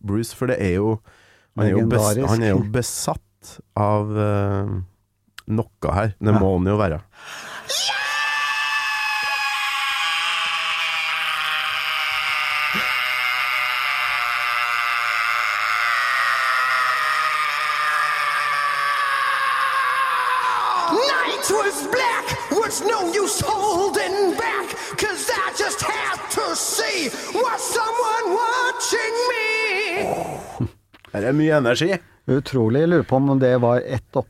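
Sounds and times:
speech: 0:00.1 - 0:04.9, 0:05.5 - 0:07.8, 0:31.1 - 0:34.2
rock singer's long sustained scream: 0:07.7 - 0:30.6.

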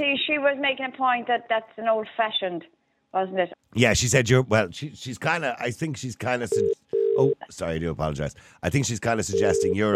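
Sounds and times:
speech: 0:00.0 - 0:09.9
telephone line ringing: 0:06.5 - 0:07.4, 0:09.2 - 0:09.9.

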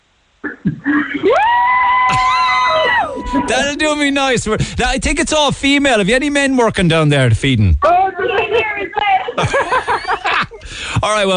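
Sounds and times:
group of workers screaming together: 0:01.2 - 0:04.0
laughter: 0:02.1 - 0:04.7, 0:07.8 - 0:11.0
speech: 0:03.5 - 0:07.9, 0:11.0 - 0:11.3.

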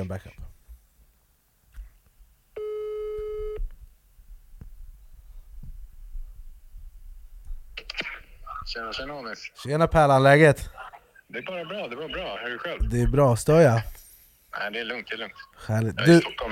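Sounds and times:
speech: 0:00.0 - 0:00.4, 0:08.7 - 0:14.0, 0:14.6 - 0:16.5
telephone ringback tone while placing a call: 0:02.6 - 0:03.6.

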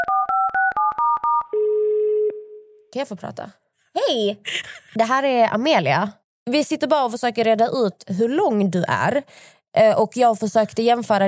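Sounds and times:
sustained lower telephone tone: 0:00.0 - 0:02.8
speech: 0:02.9 - 0:11.2.

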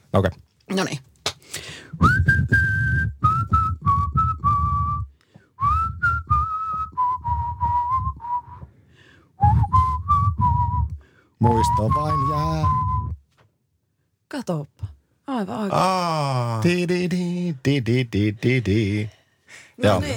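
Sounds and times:
speech: 0:00.1 - 0:01.1, 0:11.6 - 0:12.8, 0:14.3 - 0:14.7, 0:15.3 - 0:19.2, 0:19.8 - 0:20.1
person whistling a melody: 0:01.9 - 0:08.8, 0:09.4 - 0:13.3.

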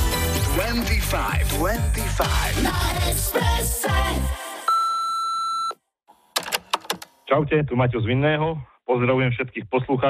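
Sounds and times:
speech: 0:00.7 - 0:04.4, 0:07.3 - 0:10.0
steady electronic answering machine beep: 0:04.7 - 0:05.8
sharp clicks: 0:06.3 - 0:07.2.

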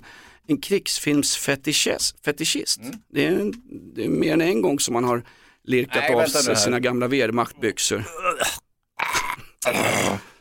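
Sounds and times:
speech: 0:00.5 - 0:08.6, 0:09.6 - 0:10.2
man groaning in pain after being shot in the belly: 0:08.1 - 0:10.3.

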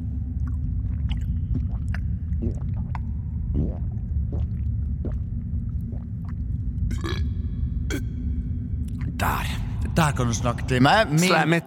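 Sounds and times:
person drinking water from a bottle spout: 0:00.2 - 0:08.2, 0:08.8 - 0:09.2
speech: 0:09.2 - 0:11.6.

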